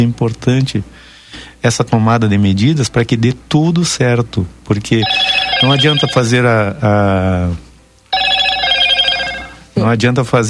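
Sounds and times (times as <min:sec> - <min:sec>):
speech: 0:00.0 - 0:07.7, 0:09.8 - 0:10.4
telephone ringing with electronic trill: 0:05.0 - 0:06.4, 0:08.1 - 0:09.8.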